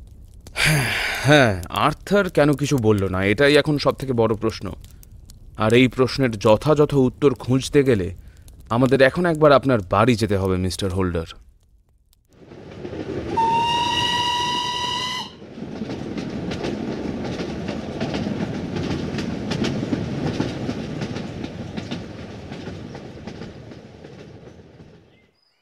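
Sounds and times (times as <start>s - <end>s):
speech: 0.7s - 4.9s, 5.6s - 11.4s
train rumbling on rails: 12.4s - 25.3s
train wheels clattering on track: 12.4s - 25.3s
train whistle: 13.3s - 15.4s.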